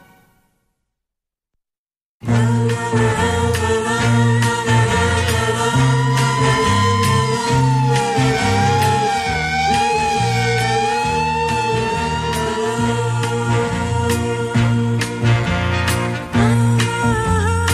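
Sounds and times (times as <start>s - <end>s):
music with a low chord-like pulse and sharp hits: 2.2s - 17.7s
wailing ambulance siren: 3.8s - 15.3s.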